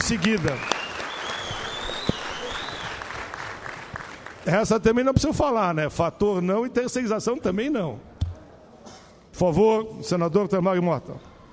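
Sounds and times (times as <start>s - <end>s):
audience applause: 0.0s - 4.4s
speech: 0.1s - 0.8s, 4.4s - 8.1s, 9.4s - 11.3s.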